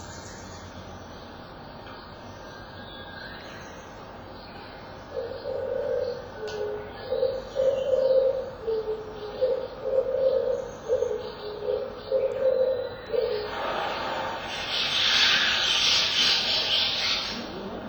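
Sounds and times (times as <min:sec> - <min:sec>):
oriental turtle dove cooing: 0:05.1 - 0:17.8
flock of starlings chattering: 0:10.8 - 0:17.8.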